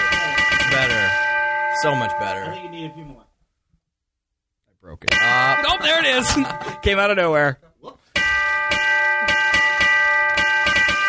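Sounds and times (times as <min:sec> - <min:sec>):
bright ringing bells playing a Christmas tune: 0:00.0 - 0:03.2, 0:05.1 - 0:07.5, 0:08.2 - 0:11.0
speech: 0:01.8 - 0:03.3, 0:04.8 - 0:08.0.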